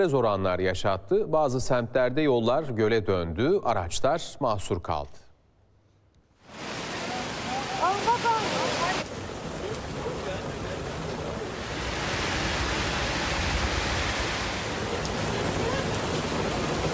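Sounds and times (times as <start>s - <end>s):
speech: 0.0s - 5.2s
heavy rain downpour after hot weather: 6.4s - 16.9s.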